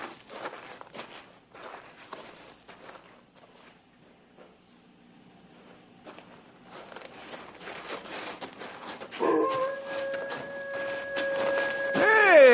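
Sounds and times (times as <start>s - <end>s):
rough noise: 0.0s - 12.5s
dog howling: 9.2s - 12.5s.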